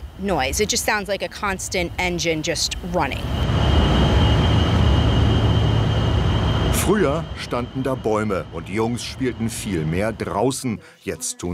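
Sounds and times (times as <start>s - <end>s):
diesel generators droning: 0.0s - 10.8s
speech: 0.2s - 3.7s, 6.9s - 11.5s
high-pitched whine of diesel generators: 1.6s - 10.8s.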